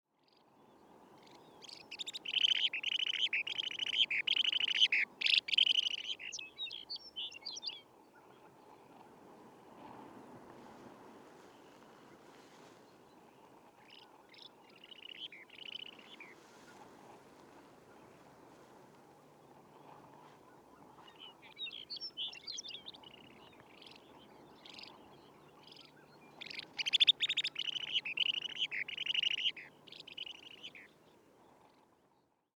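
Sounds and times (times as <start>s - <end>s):
Long-billed Dowitcher Limnodromus scolopaceus calling: 1.3s - 7.8s, 14.0s - 18.6s, 19.2s - 31.0s.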